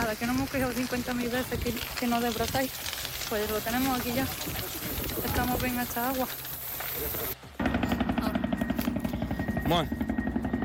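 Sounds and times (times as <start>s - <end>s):
speech: 0.1s - 7.5s, 9.7s - 10.1s
helicopters working over a wildfire with rotor blades chopping: 3.8s - 10.6s.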